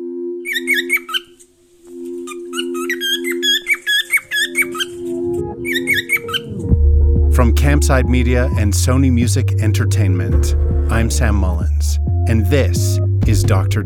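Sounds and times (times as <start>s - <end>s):
bird squawking in sharp squeaky calls: 0.4s - 6.6s
steady low droning tone: 6.7s - 13.8s
speech: 7.4s - 13.8s.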